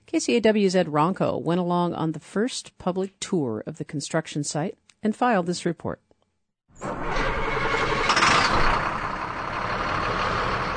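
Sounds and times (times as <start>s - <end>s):
speech: 0.1s - 6.0s
large school bus engine idling: 6.8s - 10.7s.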